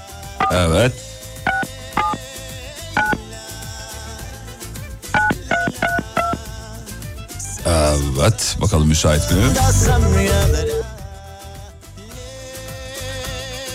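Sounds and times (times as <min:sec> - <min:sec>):
music: 0:00.0 - 0:13.7
telephone keypad dual-tone dialing beeps: 0:00.4 - 0:00.6, 0:01.5 - 0:02.2, 0:03.0 - 0:03.2, 0:05.2 - 0:06.4
speech: 0:00.5 - 0:01.2, 0:07.7 - 0:10.9.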